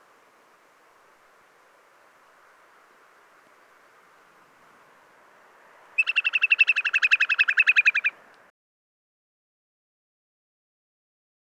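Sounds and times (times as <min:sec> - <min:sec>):
Eurasian whimbrel Numenius phaeopus trilling call: 0:05.9 - 0:08.5.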